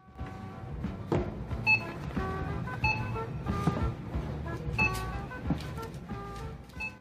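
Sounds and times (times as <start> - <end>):
busy store hum: 0.0 - 6.9
checkout cash register scanner beeps: 1.6 - 2.0, 2.8 - 3.3, 4.8 - 5.1.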